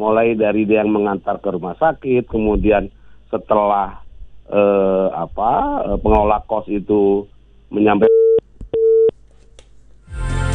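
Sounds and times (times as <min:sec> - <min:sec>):
speech: 0:00.0 - 0:08.1
static noise: 0:00.0 - 0:10.1
telephone busy tone after a disconnected call: 0:08.0 - 0:09.1.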